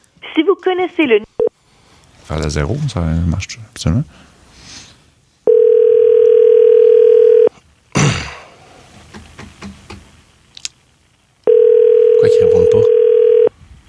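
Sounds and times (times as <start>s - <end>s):
speech: 0.3s - 1.3s, 2.3s - 4.4s
telephone dial tone: 5.5s - 7.5s, 11.4s - 13.5s
faint tapping: 9.1s - 10.1s.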